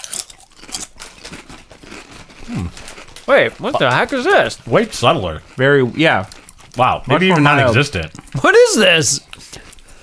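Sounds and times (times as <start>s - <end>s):
salt and vinegar potato chips crunching as they are bitten and chewed: 0.0s - 9.8s
speech: 2.5s - 9.2s.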